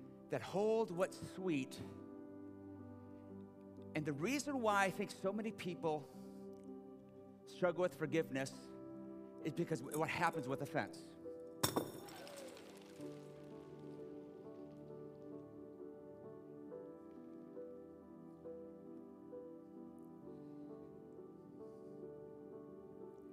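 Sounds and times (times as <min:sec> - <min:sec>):
speech: 0:00.3 - 0:02.0, 0:04.0 - 0:06.2, 0:07.5 - 0:08.7, 0:09.4 - 0:11.9
glass jar shattering: 0:11.6 - 0:13.6
small hard Skittles candies pattering across the floor: 0:11.6 - 0:14.8.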